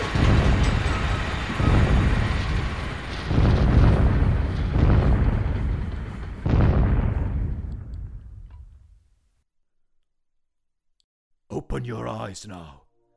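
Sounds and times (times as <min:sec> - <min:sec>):
big booming explosions: 0:00.0 - 0:09.1
speech: 0:11.8 - 0:12.8.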